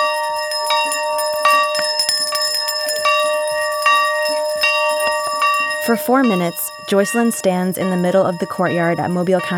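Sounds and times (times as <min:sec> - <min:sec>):
large school bell rung from a bell platform in a school courtyard: 0:00.0 - 0:09.5
speech: 0:05.9 - 0:09.5.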